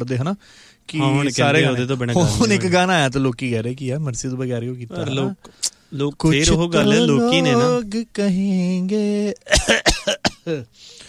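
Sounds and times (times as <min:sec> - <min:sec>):
speech: 0:00.0 - 0:11.0
person coughing genuinely: 0:09.5 - 0:10.7.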